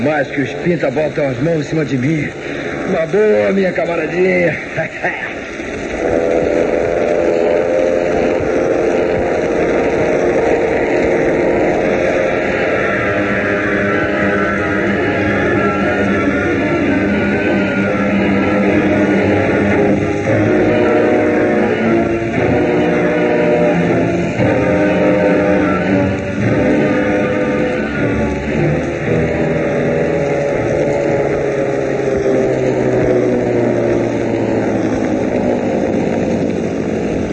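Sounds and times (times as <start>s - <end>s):
speech: 0.0s - 5.4s
motorboat engine droning with a low rumbling hum: 0.0s - 37.3s.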